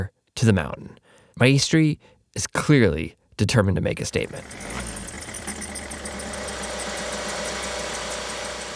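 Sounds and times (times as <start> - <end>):
speech: 0.0 - 4.9
small gas-powered compressor engine running: 4.3 - 8.7.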